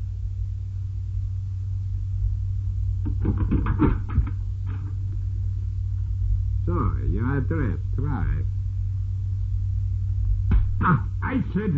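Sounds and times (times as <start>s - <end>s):
steady low hum: 0.0s - 11.7s
heavy thumps pounding on a door: 3.0s - 4.4s, 10.5s - 11.0s
speech: 7.5s - 8.6s, 10.8s - 11.7s.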